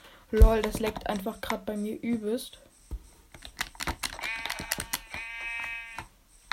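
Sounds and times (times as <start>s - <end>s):
speech: 0.3s - 2.7s
keyboard typing and clicks: 0.4s - 6.5s
video game sheep bleating: 4.2s - 6.1s.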